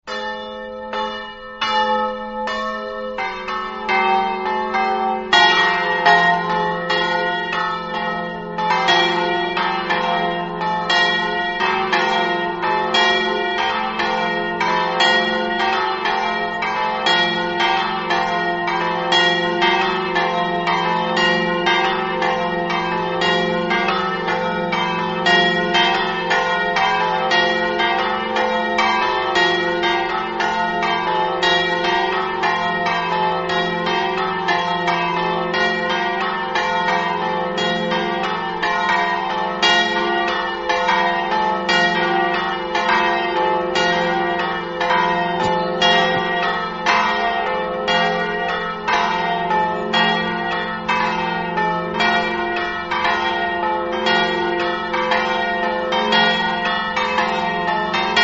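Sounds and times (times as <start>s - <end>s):
church bells ringing in Grupignano: 0.0s - 58.2s.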